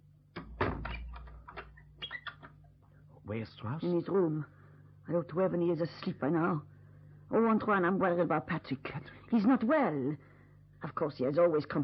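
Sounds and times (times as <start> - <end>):
low steady hum: 0.0 - 11.8
door swinging shut with a solid thud: 0.4 - 1.6
speech: 3.3 - 6.7, 7.3 - 11.8.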